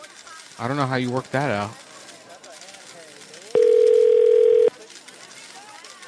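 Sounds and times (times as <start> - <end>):
speech: 0.6 - 1.8
telephone ringback tone of an unanswered call to an emergency dentist line: 3.6 - 4.7.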